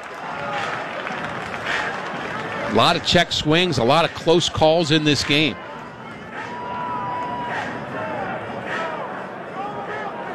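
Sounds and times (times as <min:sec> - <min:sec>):
large ballpark crowd murmur: 0:00.0 - 0:10.3
speech: 0:02.7 - 0:05.6.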